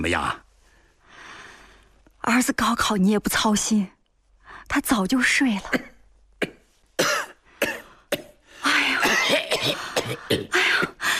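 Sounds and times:
speech: 0.0s - 0.4s, 2.2s - 4.0s, 4.6s - 6.5s
person coughing: 5.8s - 11.0s.

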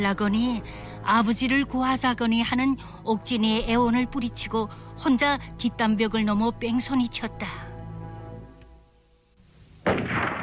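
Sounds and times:
speech: 0.0s - 7.6s
sustained low musical tone: 0.0s - 9.4s
loud gunfire at night in a village: 9.8s - 10.4s.

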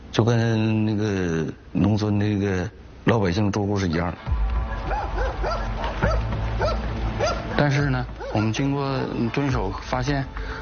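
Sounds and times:
speech: 0.2s - 4.5s, 7.6s - 10.6s
dog barking in the yard of a rented factory building in Aihui District, Heihe: 4.9s - 7.4s, 8.2s - 8.6s.

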